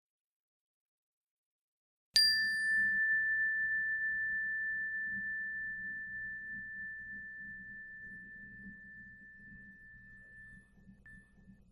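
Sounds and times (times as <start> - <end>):
meditation bell struck and ringing: 2.2 - 11.7
faint low hum: 3.8 - 11.7.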